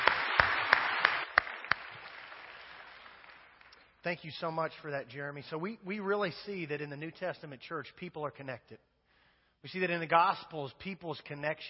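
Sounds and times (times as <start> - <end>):
church audience applause: 0.0 - 3.9
one person clapping: 0.0 - 3.9
speech: 4.0 - 8.9, 9.6 - 11.6.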